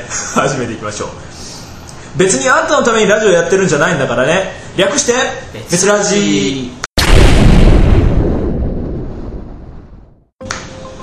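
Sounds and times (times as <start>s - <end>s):
speech: 0.1s - 1.4s, 2.1s - 6.8s
loud booming explosion sound effect: 7.0s - 10.3s.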